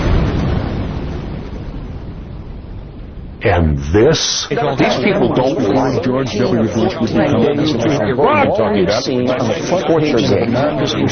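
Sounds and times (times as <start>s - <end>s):
car bomb exploding less than a block away: 0.0s - 4.2s
speech: 3.4s - 11.1s.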